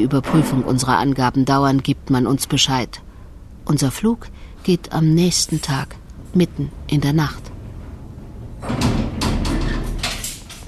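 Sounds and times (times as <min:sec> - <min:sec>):
heavy iron door closing in Uzbekistan: 0:00.0 - 0:01.2, 0:05.4 - 0:10.6
speech: 0:00.0 - 0:03.1, 0:03.7 - 0:07.5.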